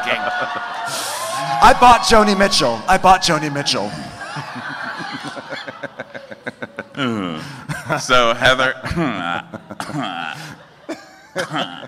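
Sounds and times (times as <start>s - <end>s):
laughter: 0.0s - 1.4s, 3.8s - 11.8s
speech: 0.1s - 4.0s, 7.0s - 10.2s, 11.4s - 11.8s
throaty vocal sounds: 7.0s - 7.7s, 9.8s - 10.7s
suppressed coughs: 8.8s - 11.8s.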